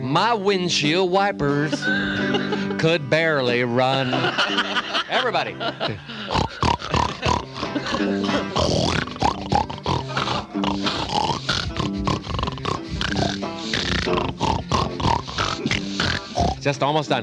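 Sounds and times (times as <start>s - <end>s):
speech: 0.1s - 6.6s, 7.9s - 9.1s, 16.6s - 17.2s
laughter: 1.5s - 8.9s, 9.8s - 10.6s
crowd of pigs oinking and grunting: 6.3s - 16.7s.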